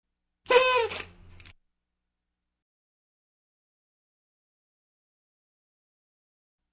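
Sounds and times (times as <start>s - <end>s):
party blower: 0.5s - 1.2s.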